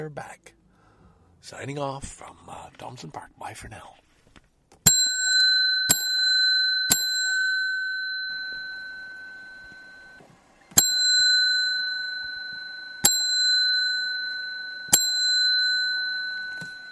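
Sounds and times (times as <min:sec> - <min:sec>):
speech: 0:00.0 - 0:00.6, 0:01.4 - 0:04.0
bicycle bell ringing: 0:04.8 - 0:10.2, 0:10.8 - 0:16.9.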